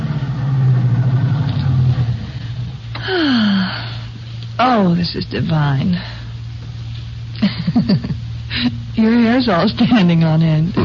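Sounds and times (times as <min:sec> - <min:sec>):
convertible car with top down rumbling: 0:00.0 - 0:03.2
falling whine of convertible car: 0:00.0 - 0:09.8
speech: 0:04.8 - 0:06.2, 0:07.4 - 0:10.8.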